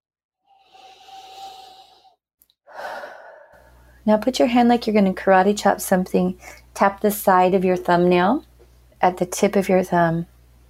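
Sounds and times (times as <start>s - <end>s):
big deep breath in and out: 0.5s - 4.0s
speech: 4.0s - 10.3s.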